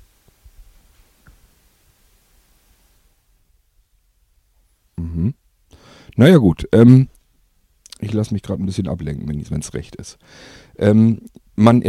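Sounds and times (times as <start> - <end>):
steady broadband static-like hiss: 0.0 - 3.5
speech: 6.2 - 7.2, 8.0 - 11.8.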